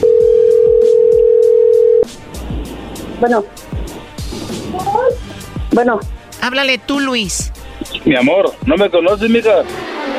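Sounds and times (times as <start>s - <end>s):
telephone dial tone from a call being placed: 0.0s - 2.1s
speech: 3.2s - 3.7s, 4.8s - 9.8s.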